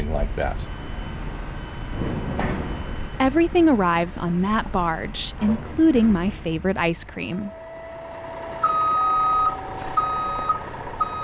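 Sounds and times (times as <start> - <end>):
broadband noise: 0.0 - 8.9
constant rumbling truck engine: 0.0 - 11.2
truck reversing alarm beeping: 0.0 - 11.2
speech: 0.1 - 0.8, 2.0 - 2.4, 3.2 - 7.6.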